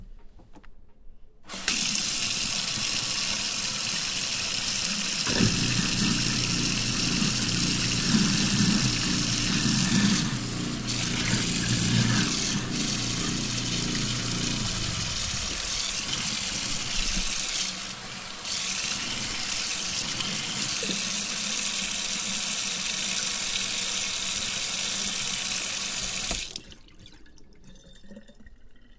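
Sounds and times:
garbage disposal grinding and humming: 1.5 - 21.8
tap water running into a sink: 1.5 - 28.4.

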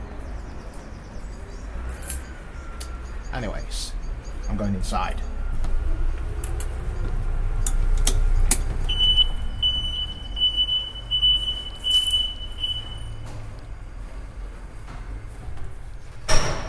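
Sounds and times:
low rumble of traffic and outdoor noise: 0.0 - 16.6
speech: 3.3 - 5.4
building entry door steady high electronic beep: 8.9 - 13.4.

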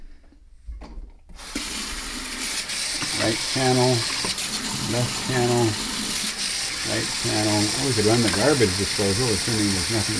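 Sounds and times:
water gushing from a kitchen faucet into the sink: 1.4 - 10.1
kitchen faucet click: 2.9 - 4.6, 8.2 - 8.6
speech: 3.2 - 4.2, 4.9 - 5.9, 6.9 - 10.1.

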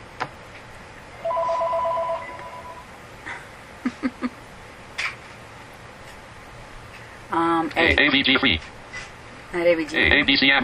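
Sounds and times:
telephone ringing with electronic trill: 1.2 - 2.9
speech: 7.8 - 8.8, 9.5 - 10.6.

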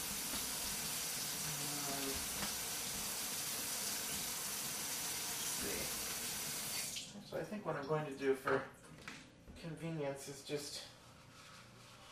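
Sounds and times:
tap water running over a measuring cup: 0.0 - 7.1
speech: 7.3 - 8.8, 9.6 - 10.9.

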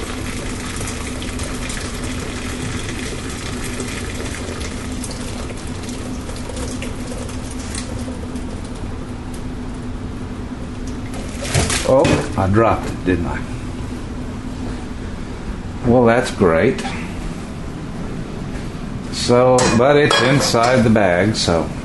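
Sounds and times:
boiling water slowly poured off: 0.0 - 8.8, 10.8 - 12.4
speech: 11.9 - 13.6, 15.9 - 17.0, 19.3 - 21.8.

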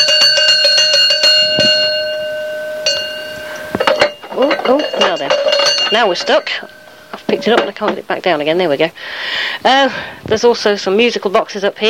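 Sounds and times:
large cowbell clanging: 0.0 - 8.2
speech: 5.2 - 11.8.

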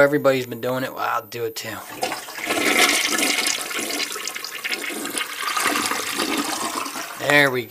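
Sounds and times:
speech: 0.0 - 3.4, 7.2 - 7.7
low-flow 1.8-gallon toilet flushing in a house bathroom: 1.7 - 7.6.

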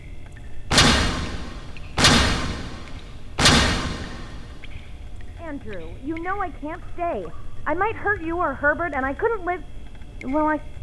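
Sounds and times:
heavy iron door opening with booming clanks: 0.7 - 5.0
low rumble: 0.7 - 5.0
speech: 5.5 - 10.8.

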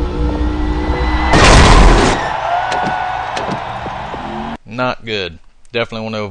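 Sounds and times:
video game race car engine drone: 0.0 - 1.2
race car crashing in a video game after failing to clear a jump: 1.2 - 4.3
speech: 4.8 - 6.3.

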